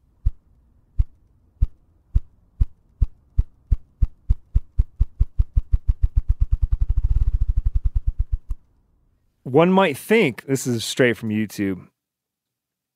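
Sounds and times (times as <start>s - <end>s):
ruffed grouse drumming wings against its body on a log: 1.0s - 8.6s
speech: 9.5s - 11.9s.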